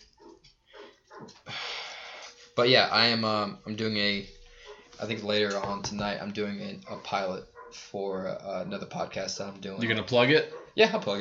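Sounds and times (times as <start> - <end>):
dog barking in short yapping bursts: 0.1 - 1.4, 6.9 - 7.9, 10.4 - 10.9
speech: 2.6 - 4.4, 5.0 - 11.2.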